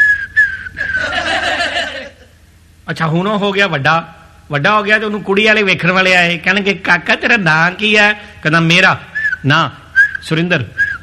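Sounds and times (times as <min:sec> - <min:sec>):
person whistling a sustained high tone: 0:00.0 - 0:01.1, 0:09.1 - 0:11.0
laughter and chuckling: 0:00.8 - 0:02.4
speech: 0:02.9 - 0:10.8.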